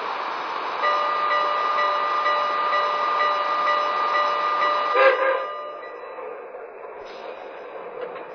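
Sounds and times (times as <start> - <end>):
passenger train rolling on track: 0.0 - 8.3
passenger train horn-like tones: 4.8 - 5.7.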